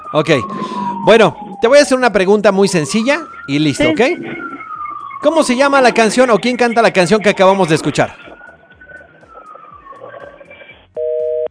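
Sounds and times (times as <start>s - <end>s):
speech: 0.1s - 4.4s, 5.2s - 8.2s
soft telephone line noise: 3.4s - 11.5s
telephone busy tone after a phone call cuts off: 10.2s - 11.5s.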